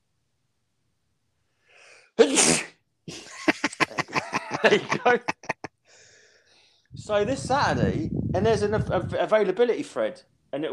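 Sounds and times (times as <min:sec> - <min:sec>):
faint inhale: 0:01.5 - 0:02.2, 0:05.8 - 0:06.9
person sneezing: 0:02.2 - 0:02.8
laughter: 0:03.1 - 0:05.7
speech: 0:04.6 - 0:05.4, 0:07.1 - 0:10.7
short sniffling gasping breaths: 0:05.8 - 0:06.9.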